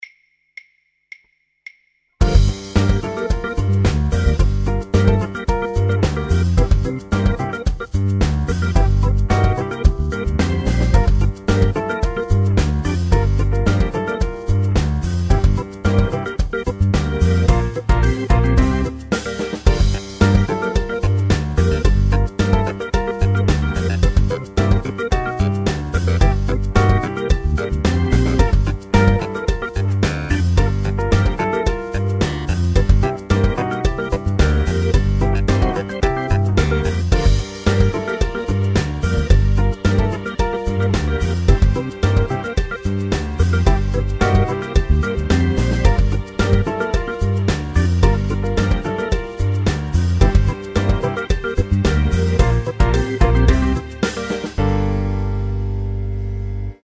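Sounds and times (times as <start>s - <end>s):
improvising with blues scales over a backing track: 2.2s - 56.8s.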